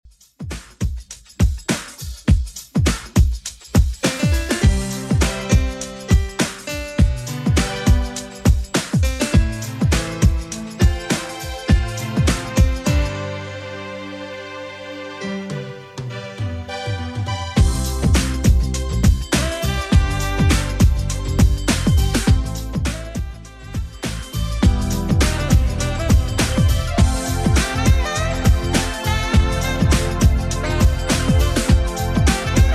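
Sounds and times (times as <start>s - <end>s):
80s drum beat at 102 bpm: 0.1s - 13.1s, 17.6s - 32.7s.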